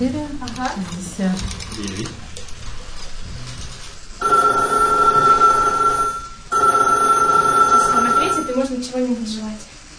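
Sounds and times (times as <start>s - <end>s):
speech: 0.0s - 2.3s
telephone ringing at a New Year's gathering: 4.2s - 8.7s.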